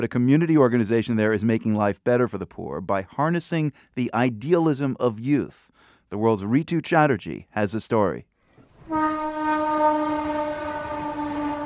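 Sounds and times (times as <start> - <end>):
speech: 0.0 - 8.3
train horn blast on railroad tracks in Kolkata India: 8.8 - 11.6.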